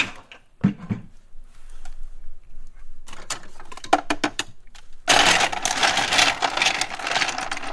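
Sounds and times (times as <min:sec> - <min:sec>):
ice cubes rattling in a fridge freezer: 0:05.1 - 0:07.7.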